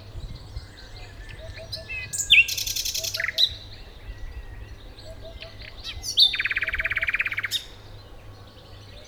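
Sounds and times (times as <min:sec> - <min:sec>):
Common nightingale Luscinia megarhynchos song with buzzy rattles and trills: 0:00.1 - 0:09.0.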